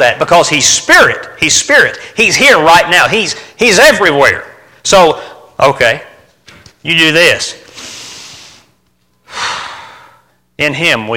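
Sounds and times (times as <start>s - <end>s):
speech: 0.0s - 6.1s, 6.8s - 7.6s, 10.6s - 11.1s
person breathing deeply: 7.7s - 10.4s.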